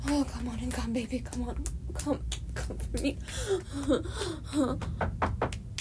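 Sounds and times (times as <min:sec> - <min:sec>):
speech: 0:00.1 - 0:05.6
knocks on a door: 0:04.9 - 0:05.6.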